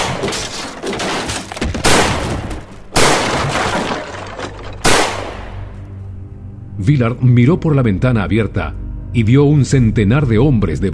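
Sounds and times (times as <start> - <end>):
speech: 0.2 - 0.6, 6.8 - 10.9
gunshots: 1.8 - 3.8, 4.8 - 5.7.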